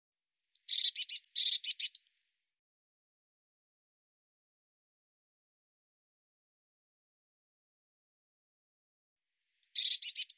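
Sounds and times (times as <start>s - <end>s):
Eurasian blue tit chattering call: 0.6s - 2.0s, 9.6s - 10.3s.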